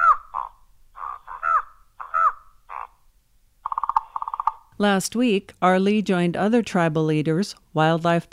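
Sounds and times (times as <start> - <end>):
raven croaking and calling: 0.0 - 4.7
speech: 4.8 - 8.3.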